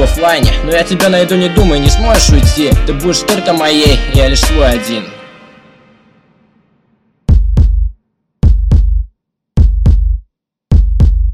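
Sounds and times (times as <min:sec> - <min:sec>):
speech: 0:00.0 - 0:05.2
loud slow heartbeat with deep double knock: 0:01.6 - 0:03.0, 0:07.3 - 0:11.3.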